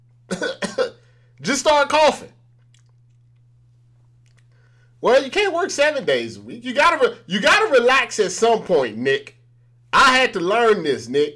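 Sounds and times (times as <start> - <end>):
faint steady hum: 0.0 - 11.3
person faking a coughing fit: 0.3 - 1.1
speech: 1.4 - 2.4, 5.0 - 11.3.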